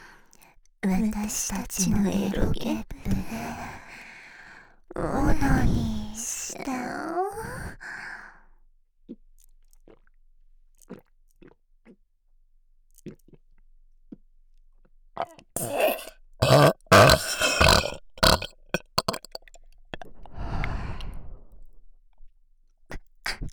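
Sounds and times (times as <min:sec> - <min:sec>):
speech: 0:00.8 - 0:03.5, 0:05.0 - 0:07.7
quiet mouth clicks: 0:15.2 - 0:20.8
loud drawn-out burp: 0:15.3 - 0:19.6
soft breathy exhale: 0:20.2 - 0:21.5.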